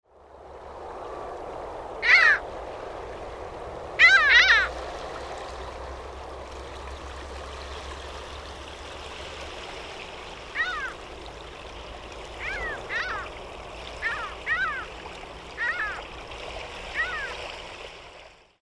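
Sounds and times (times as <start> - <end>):
Mediterranean gull calling: 2.0 - 2.4, 4.0 - 4.7, 10.5 - 11.0, 12.4 - 16.1, 16.9 - 17.4.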